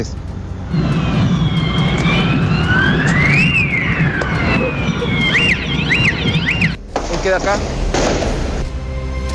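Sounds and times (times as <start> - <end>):
speech: 0.0 - 1.0, 7.2 - 7.8
firecrackers and fireworks exploding: 0.7 - 8.8.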